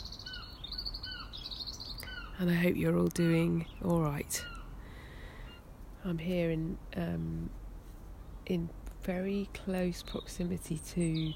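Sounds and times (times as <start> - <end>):
birds singing in a garden on a hillside terrace: 0.0 - 6.8, 9.3 - 11.3
speech: 2.4 - 4.5, 6.0 - 7.6, 8.5 - 11.3.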